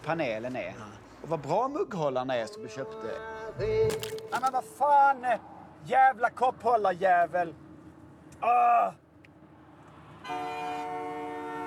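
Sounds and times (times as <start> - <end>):
speech: 0.0 - 7.6, 8.4 - 9.0, 10.2 - 11.0
low rumble of traffic: 0.0 - 11.6
loud car horn honking: 10.2 - 11.6.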